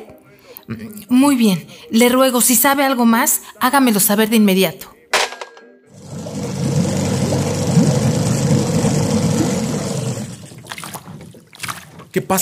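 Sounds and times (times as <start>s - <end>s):
speech: 0.7s - 4.9s, 12.2s - 12.4s
boat engine rumbling: 5.9s - 12.2s.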